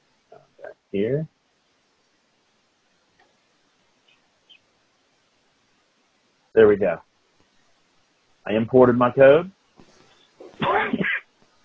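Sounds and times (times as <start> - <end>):
speech: 0.3 - 1.4, 6.6 - 7.1, 8.4 - 9.6
person sneezing: 10.4 - 11.2.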